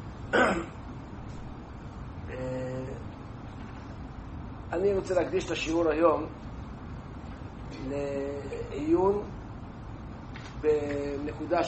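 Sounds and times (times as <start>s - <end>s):
man with a cold clearing his throat with a low rasping hum: 0.3s - 0.8s
man with a cold coughing: 0.3s - 0.8s
speech: 0.4s - 0.8s, 4.8s - 6.5s, 7.8s - 9.4s, 10.6s - 11.6s.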